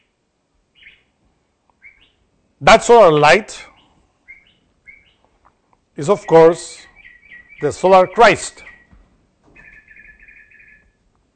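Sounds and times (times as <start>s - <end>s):
faint hiss: 0.0s - 11.3s
bird trilling chirp: 0.7s - 1.1s, 1.8s - 2.2s, 3.7s - 5.3s, 6.0s - 11.0s
speech: 2.6s - 3.7s, 6.0s - 6.9s, 7.6s - 8.7s.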